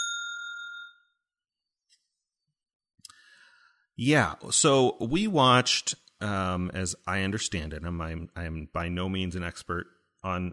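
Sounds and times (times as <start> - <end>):
bell ding as a spoiler warning: 0.0 - 1.2
speech: 4.0 - 10.5.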